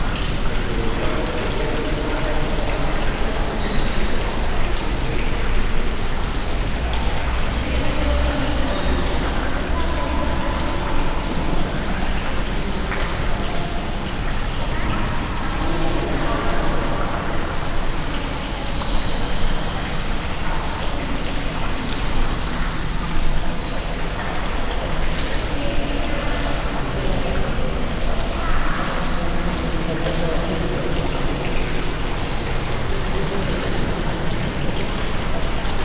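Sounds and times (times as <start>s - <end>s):
people in an open cave: 0.0s - 35.8s.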